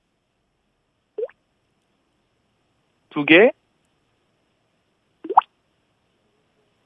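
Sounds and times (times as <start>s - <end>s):
speech: 3.2s - 3.6s
water drop plops imitated with the mouth: 5.2s - 5.5s.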